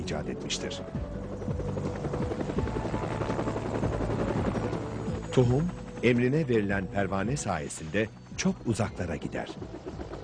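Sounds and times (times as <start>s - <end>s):
helicopter engine whine: 0.0s - 10.2s
speech: 0.1s - 2.7s, 5.4s - 9.9s
helicopter rotor thumping: 1.0s - 6.3s, 9.3s - 10.2s.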